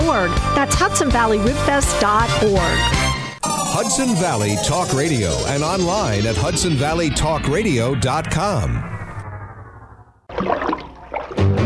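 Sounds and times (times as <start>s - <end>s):
speech: 0.1s - 3.0s, 3.8s - 8.9s
sustained slightly falling tone: 3.4s - 10.3s
water splashing in a bathtub: 10.3s - 11.6s.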